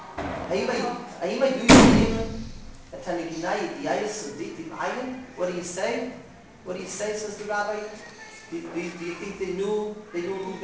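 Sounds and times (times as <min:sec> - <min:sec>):
door slamming shut: 0:00.0 - 0:00.9, 0:01.6 - 0:03.1
speech: 0:00.5 - 0:02.4, 0:03.0 - 0:10.6.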